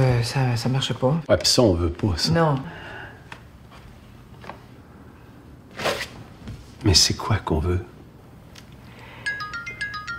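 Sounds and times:
speech: 0:00.2 - 0:02.9, 0:06.8 - 0:07.9
mobile phone ringtone for an incoming call: 0:09.1 - 0:10.1.

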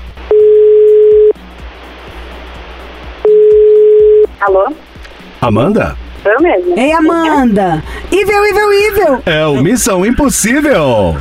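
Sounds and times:
ringback tone of an outgoing telephone call: 0:00.3 - 0:01.3, 0:03.2 - 0:04.3
speech: 0:04.4 - 0:11.1.

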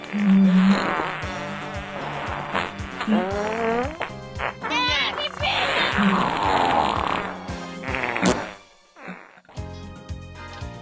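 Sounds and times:
varied fart sound effects: 0:00.0 - 0:09.6
speech: 0:00.1 - 0:00.4, 0:03.1 - 0:03.4.

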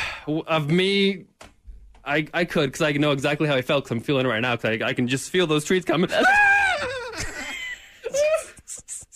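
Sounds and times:
speech: 0:00.2 - 0:01.4, 0:02.0 - 0:07.3
person reenacting a scream of terror: 0:06.1 - 0:07.2
breathy bursts of laughter: 0:06.1 - 0:09.1.

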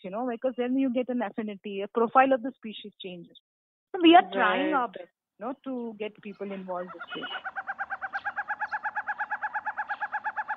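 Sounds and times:
speech: 0:00.0 - 0:07.6
forest owlet calling: 0:06.3 - 0:10.5.

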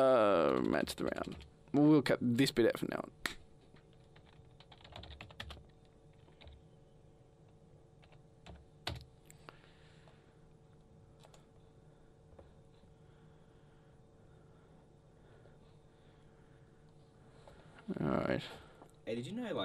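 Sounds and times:
speech: 0:00.0 - 0:03.2
faint steady electrical hum: 0:00.0 - 0:19.6
typing on a computer keyboard: 0:00.3 - 0:01.5, 0:03.6 - 0:06.6, 0:08.0 - 0:09.1.

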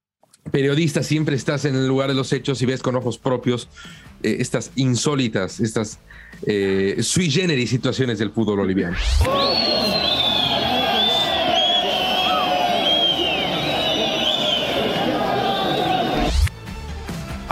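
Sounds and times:
speech: 0:00.4 - 0:10.2
large football crowd whistling at a stadium in Bolivia: 0:08.4 - 0:16.5.

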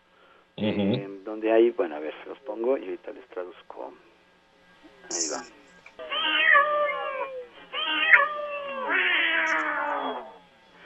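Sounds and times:
speech: 0:00.6 - 0:04.1, 0:05.1 - 0:06.4
cat meowing insistently: 0:06.0 - 0:10.4.

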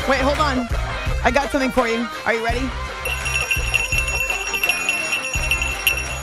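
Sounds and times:
speech: 0:00.1 - 0:02.9
reindeer bell jingling: 0:03.0 - 0:06.2.

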